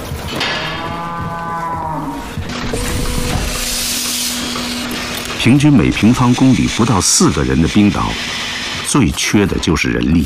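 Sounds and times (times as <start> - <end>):
dairy cow deep bellow: 0.3 - 8.4
dairy cows mooing on a family farm in central Iceland: 0.4 - 5.7
speech: 5.4 - 10.2.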